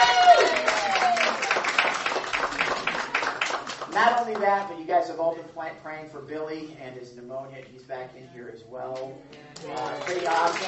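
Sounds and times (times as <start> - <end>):
person whooping: 0.0 - 1.6
crowd applauding: 0.0 - 4.6, 9.5 - 10.6
speech: 4.0 - 10.6.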